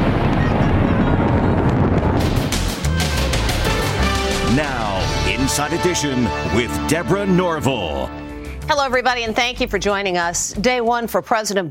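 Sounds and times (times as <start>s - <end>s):
sharp crackling fireworks bursts: 0.0s - 5.1s
fireworks booming: 0.0s - 6.7s
speech: 5.6s - 11.6s.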